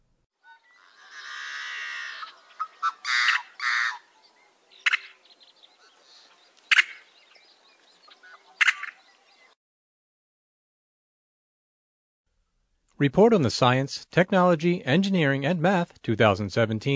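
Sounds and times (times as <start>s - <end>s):
Yellow-headed Blackbird call: 0.4s - 9.5s
speech: 13.0s - 16.9s.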